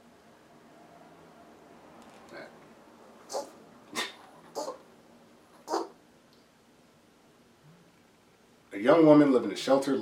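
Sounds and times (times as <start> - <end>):
small dog whimpering: 3.3 - 4.8
small dog yipping and barking: 3.3 - 4.8, 5.6 - 6.0
speech: 8.8 - 10.0.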